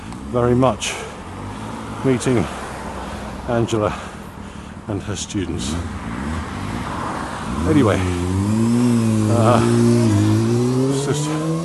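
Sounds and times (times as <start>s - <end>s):
speech: 0.3s - 1.0s, 2.0s - 2.6s, 3.5s - 4.1s, 4.9s - 6.0s, 7.6s - 8.6s, 9.3s - 10.3s, 11.1s - 11.4s
Honda motorcycle pulling away: 8.2s - 11.6s.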